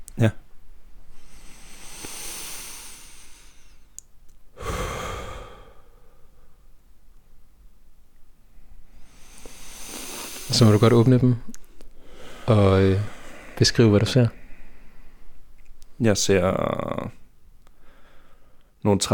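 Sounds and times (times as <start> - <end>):
speech: 0.2 - 0.4, 10.6 - 11.6, 12.5 - 14.4, 16.0 - 17.2, 18.8 - 19.1
slow deep breaths: 1.0 - 6.7, 8.5 - 15.5, 16.5 - 18.8.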